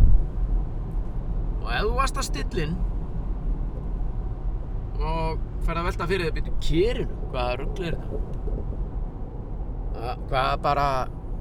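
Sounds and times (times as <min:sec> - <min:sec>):
road rumble in a car interior: 0:00.0 - 0:11.3
speech: 0:01.8 - 0:03.0, 0:05.0 - 0:08.6, 0:10.0 - 0:11.2.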